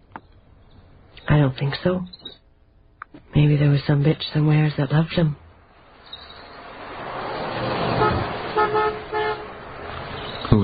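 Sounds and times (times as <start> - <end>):
speech: 1.4 - 2.2, 3.4 - 5.4
car passing: 3.4 - 10.6
car horn honks: 7.8 - 10.6.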